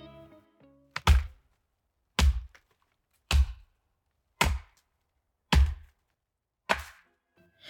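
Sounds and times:
axe chopping into a tree trunk: 0:02.2 - 0:02.6, 0:03.3 - 0:03.6, 0:05.5 - 0:05.9, 0:06.7 - 0:07.0.

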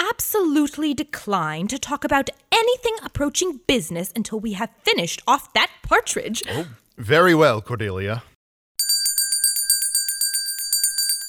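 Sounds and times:
speech: 0:00.2 - 0:08.3
dinner bell ringing: 0:08.8 - 0:11.2.

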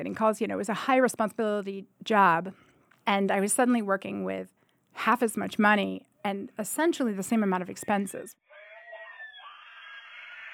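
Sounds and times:
speech: 0:00.0 - 0:08.5
children yelling and shrieking from another room: 0:08.5 - 0:10.5.

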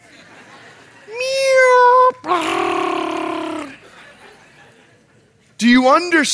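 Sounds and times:
laughter: 0:00.0 - 0:01.6, 0:02.2 - 0:05.3
person imitating a small kitten's mew: 0:01.1 - 0:03.8
speech: 0:05.6 - 0:06.3.

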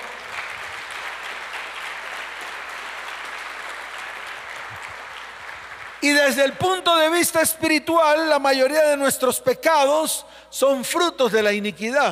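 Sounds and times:
congregation applauding: 0:00.0 - 0:07.0
speech: 0:06.0 - 0:12.1.

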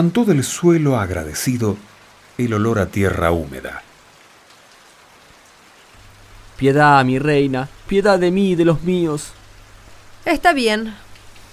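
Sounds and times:
speech: 0:00.0 - 0:03.9, 0:06.6 - 0:09.4, 0:10.2 - 0:11.0
steady quiet rain falling: 0:00.0 - 0:11.5
fine droplets pattering on a surface: 0:10.7 - 0:11.5.

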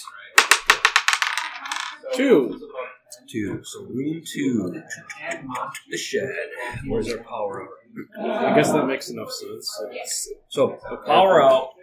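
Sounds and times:
six-sided die rolled on a hard surface during a board game: 0:00.4 - 0:02.2
speech: 0:02.1 - 0:11.8
laughter: 0:04.2 - 0:09.0.

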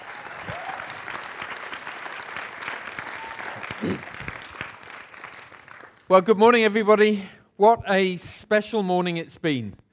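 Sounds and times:
faint voices and whoops: 0:00.0 - 0:01.2, 0:02.9 - 0:04.6
audience applause welcoming a speaker: 0:00.0 - 0:06.1
speech: 0:03.8 - 0:04.1, 0:06.1 - 0:09.8.

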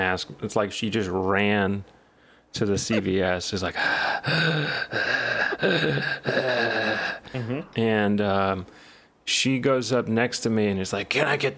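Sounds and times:
speech: 0:00.0 - 0:11.5
voice imitating heavy labored panting of an old woman: 0:02.9 - 0:07.7.

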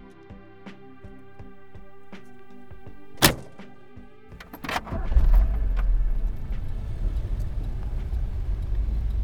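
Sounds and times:
car driving heard from inside the cabin: 0:02.5 - 0:09.2
car door shutting: 0:03.2 - 0:03.8, 0:04.4 - 0:09.2.

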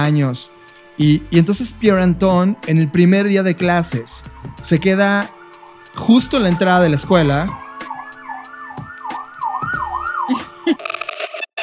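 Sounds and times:
speech: 0:00.0 - 0:05.4, 0:06.0 - 0:07.6
ambulance siren wailing outside: 0:05.4 - 0:10.8.

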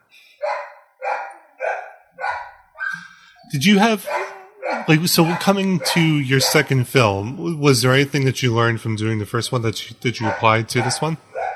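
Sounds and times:
anxious puppy barking: 0:00.0 - 0:08.3, 0:09.0 - 0:11.5
laughter: 0:01.0 - 0:11.5
speech: 0:03.5 - 0:11.3.

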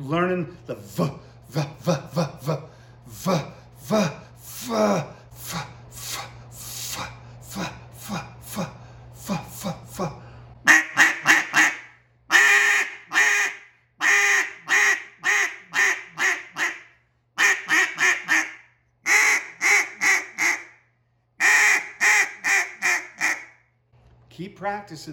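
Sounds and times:
speech: 0:00.0 - 0:05.7, 0:24.7 - 0:25.1
duck call blown to imitate quacking in a cut-down calling style: 0:10.7 - 0:20.8, 0:21.4 - 0:23.6.

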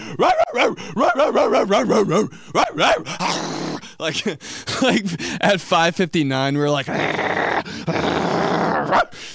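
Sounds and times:
speech: 0:00.1 - 0:08.3, 0:08.9 - 0:09.3
person imitating a pack of dogs barking and whining: 0:00.2 - 0:03.8, 0:06.9 - 0:09.2.

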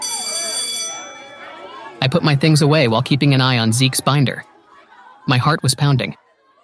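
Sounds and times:
school end-of-day bell ringing: 0:00.0 - 0:04.1
voices chattering: 0:00.0 - 0:06.6
speech: 0:02.0 - 0:04.5, 0:05.3 - 0:06.2.

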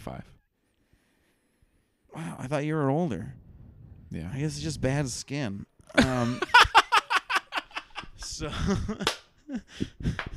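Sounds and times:
speech: 0:00.0 - 0:00.4, 0:02.2 - 0:03.4, 0:04.1 - 0:06.6, 0:08.2 - 0:10.3
laughter: 0:05.9 - 0:10.2
loud sharp hand clap: 0:09.0 - 0:09.4.

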